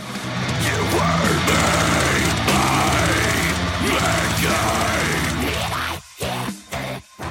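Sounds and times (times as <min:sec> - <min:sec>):
dense distorted metal guitars: 0:00.0 - 0:07.2
pounding metal drums: 0:00.2 - 0:05.5
death metal growling guttural scream: 0:00.6 - 0:07.2.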